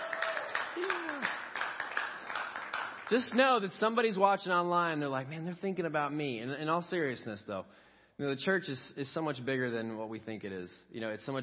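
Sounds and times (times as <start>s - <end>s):
person whooping: 0.0s - 1.5s
faint cheers: 0.0s - 1.6s
church audience clapping: 0.0s - 3.8s
speech: 3.1s - 11.4s.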